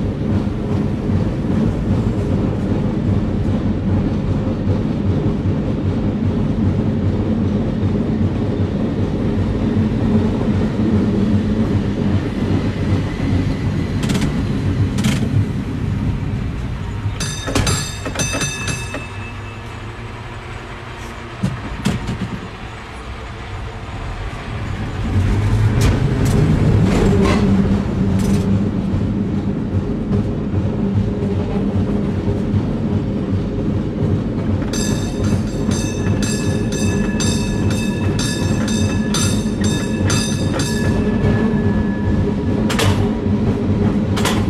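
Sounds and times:
cable car rumbling along the street: 0:00.0 - 0:44.4
cable car metallic clanks: 0:17.2 - 0:19.3, 0:34.6 - 0:41.5.

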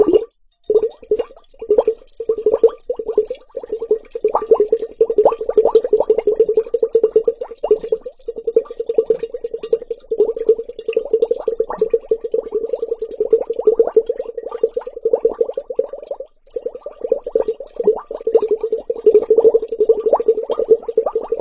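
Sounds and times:
water fizzing and bubbling in a large glass bowl: 0:00.0 - 0:21.4.

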